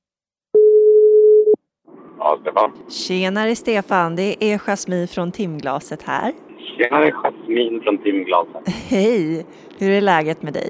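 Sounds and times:
steady telephone ringing tone while calling: 0.6 - 1.6
speech: 2.4 - 10.6.

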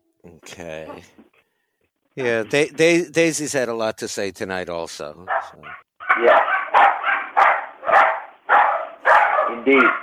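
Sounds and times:
speech: 0.2 - 1.4, 2.2 - 6.5, 9.6 - 10.0
dogs barking after being put outside: 5.3 - 10.0.

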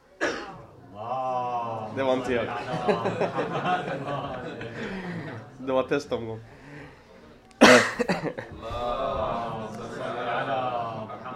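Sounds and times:
person coughing: 0.2 - 0.6, 7.6 - 8.4
laughter: 0.6 - 5.8, 7.7 - 11.3
speech: 2.0 - 4.9, 5.6 - 6.6, 8.0 - 9.6.

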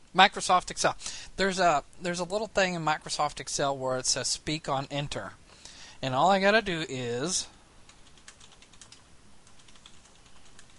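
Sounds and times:
steady hiss: 0.0 - 10.7
speech: 0.2 - 5.4, 6.0 - 7.6
typing on a computer keyboard to enter text into a spreadsheet: 7.9 - 10.7.

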